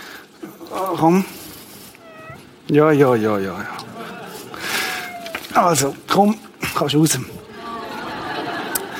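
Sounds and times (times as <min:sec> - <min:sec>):
steady hiss: 0:00.0 - 0:08.9
speech: 0:00.8 - 0:01.4, 0:02.7 - 0:03.8, 0:05.6 - 0:07.5
cat meowing: 0:01.9 - 0:02.6, 0:04.7 - 0:05.6
laughter: 0:03.8 - 0:05.2, 0:07.4 - 0:08.9.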